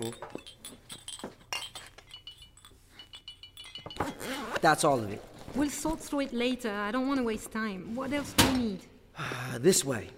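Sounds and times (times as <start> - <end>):
speech: 0.0 - 0.4, 4.6 - 10.1
glass jars clinking while packed: 0.0 - 4.6.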